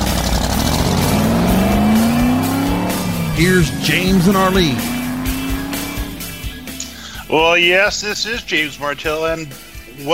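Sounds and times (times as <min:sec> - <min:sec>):
1965 Shelby Cobra race car accelerating hard: 0:00.0 - 0:07.4
speech: 0:03.4 - 0:05.0, 0:07.3 - 0:10.1.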